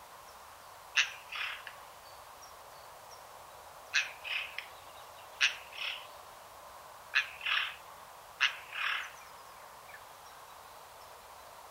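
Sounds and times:
Eurasian Jay Garrulus glandarius calling: 1.0 - 1.7, 4.0 - 4.6, 5.4 - 6.1, 7.2 - 7.8, 8.4 - 9.2.

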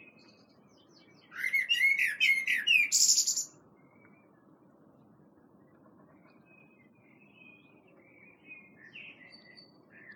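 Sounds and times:
Common blackbird Turdus merula singing: 0.0 - 4.0, 6.5 - 10.1.

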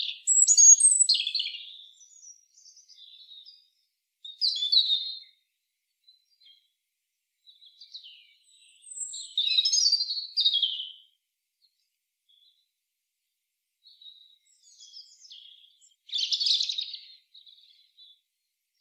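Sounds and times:
European robin Erithacus rubecula singing: 0.0 - 6.7, 7.4 - 11.1, 13.9 - 18.2.

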